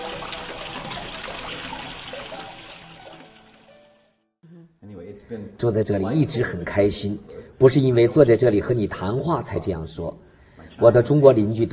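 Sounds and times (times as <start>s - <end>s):
water gently trickling and flowing in a busy city: 0.0s - 4.0s
speech: 5.3s - 11.7s.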